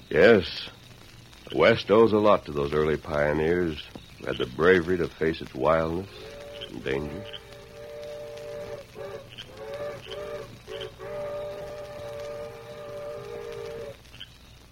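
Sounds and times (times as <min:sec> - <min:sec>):
low steady rumble: 0:00.0 - 0:14.7
speech: 0:00.1 - 0:00.8, 0:01.5 - 0:07.4
distant eastbound train whistle: 0:05.9 - 0:14.0.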